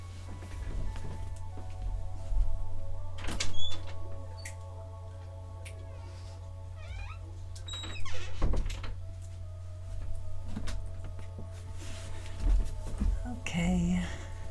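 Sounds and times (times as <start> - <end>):
steady low electrical hum: 0.0 - 14.4
door opening to let a dog in: 3.2 - 4.6, 6.8 - 9.0
creaky squeak: 3.3 - 4.5, 6.8 - 8.9.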